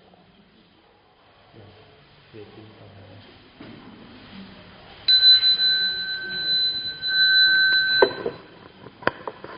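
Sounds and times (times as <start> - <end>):
bell rung to begin evening chanting: 5.1 - 8.6.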